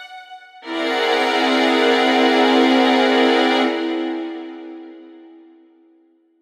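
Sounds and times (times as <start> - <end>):
augmented seventh sharp eleven chord: 0.6 - 5.7.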